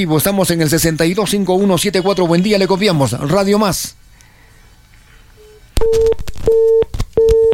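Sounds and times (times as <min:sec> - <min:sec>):
speech: 0:00.0 - 0:04.0, 0:05.8 - 0:07.5
telephone busy signal on a radio station call-in line: 0:05.4 - 0:07.5.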